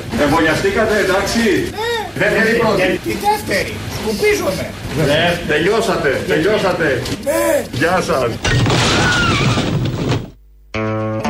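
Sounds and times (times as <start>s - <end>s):
speech: 0.2s - 9.6s
vaccination centre building in Peristeri collapsing with shattering debris: 8.4s - 10.4s.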